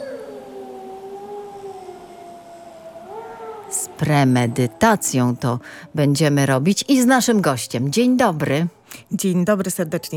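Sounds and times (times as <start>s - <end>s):
wolf howling: 0.0s - 6.8s
speech: 3.8s - 10.1s.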